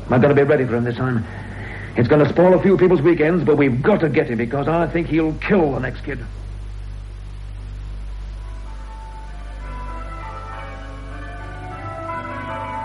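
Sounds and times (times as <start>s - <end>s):
hiss: 0.0s - 12.8s
speech: 0.1s - 6.4s
church bells ringing heard through an open window: 9.2s - 12.8s.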